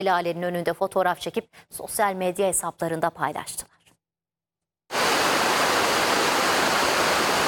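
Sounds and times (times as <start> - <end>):
speech: 0.0 - 3.8
waterfall in flood roaring among rocks near Bursa's Kestel district: 5.0 - 7.4.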